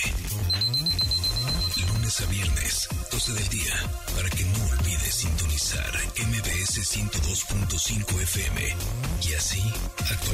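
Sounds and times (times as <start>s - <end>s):
smart device alarm ringing with steady high electronic tone: 0.4s - 2.2s
speech: 2.2s - 10.3s.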